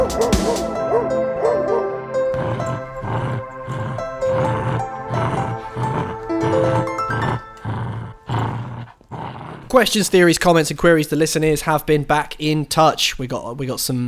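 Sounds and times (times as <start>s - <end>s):
sustained tonal background: 0.0s - 8.8s
dog barking deeply: 0.3s - 3.7s
speech: 9.7s - 14.0s.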